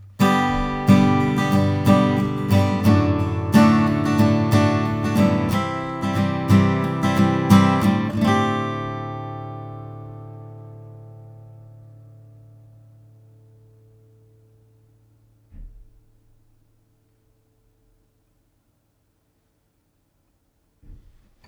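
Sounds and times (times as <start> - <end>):
guitar recorded with Neumann and t.bone RB500 microphones: 0.0 - 16.5.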